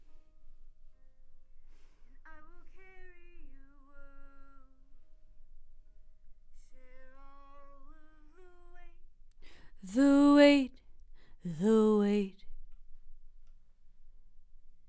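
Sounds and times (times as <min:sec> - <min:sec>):
voice: 0:09.8 - 0:10.7, 0:11.5 - 0:12.3.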